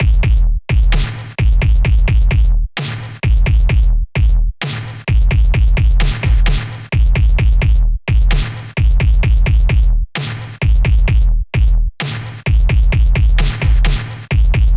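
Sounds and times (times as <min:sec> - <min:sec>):
kick drum: 0:00.0 - 0:14.7
snare drum: 0:00.9 - 0:01.4, 0:02.8 - 0:03.3, 0:04.6 - 0:05.1, 0:05.9 - 0:06.9, 0:08.3 - 0:08.8, 0:10.2 - 0:10.6, 0:12.0 - 0:12.6, 0:13.2 - 0:14.4.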